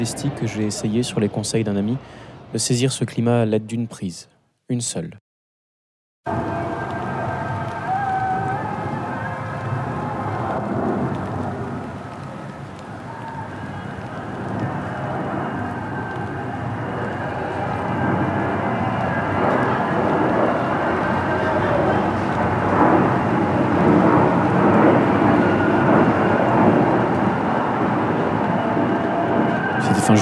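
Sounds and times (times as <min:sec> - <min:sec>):
steady rain falling in late June: 0:00.0 - 0:02.3, 0:06.3 - 0:30.2
aircraft engines roaring overhead: 0:00.0 - 0:02.6, 0:06.3 - 0:30.2
speech: 0:00.0 - 0:05.2, 0:06.2 - 0:06.5
faint even droning hum: 0:06.3 - 0:30.2.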